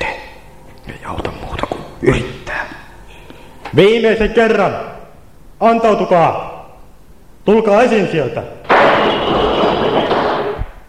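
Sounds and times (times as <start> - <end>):
speech: 3.7 - 5.0, 5.6 - 6.5, 7.4 - 9.1
loud gunshot: 8.7 - 10.8.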